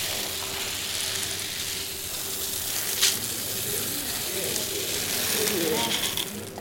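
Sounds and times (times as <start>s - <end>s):
popcorn kernels poured into a container: 0.0s - 6.6s
faint voices murmuring: 3.0s - 6.6s.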